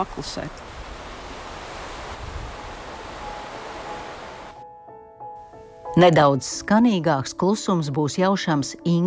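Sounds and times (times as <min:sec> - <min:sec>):
speech: 0:00.0 - 0:00.7, 0:06.0 - 0:09.0
rushing wind outdoors: 0:00.0 - 0:04.6.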